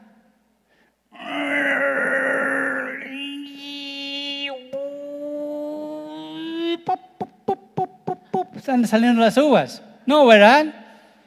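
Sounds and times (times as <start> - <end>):
person imitating straining grunts of effort: 1.1 - 3.9
speech: 8.7 - 10.8.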